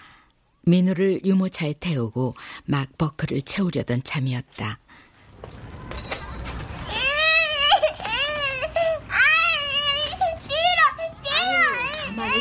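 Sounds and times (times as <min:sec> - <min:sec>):
outdoor noise: 0:00.0 - 0:12.3
speech: 0:00.7 - 0:05.6
children shouting and squealing in a playground: 0:05.7 - 0:12.3.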